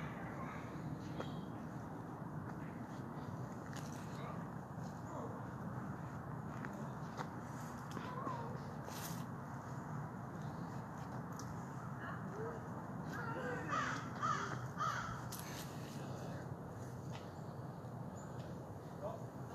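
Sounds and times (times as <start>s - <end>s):
voices: 0.0s - 19.5s
crow cawing: 13.2s - 15.6s.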